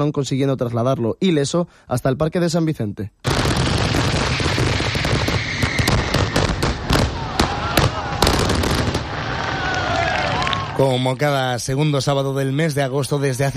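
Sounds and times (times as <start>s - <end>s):
speech: 0.0s - 3.3s, 10.8s - 13.5s
fireworks display bursts and crackles: 3.2s - 10.8s
hissing whistles: 3.9s - 10.6s.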